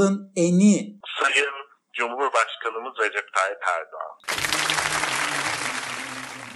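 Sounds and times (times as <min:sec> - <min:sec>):
speech: 0:00.0 - 0:05.6
large crowd applauding loudly: 0:04.2 - 0:06.5.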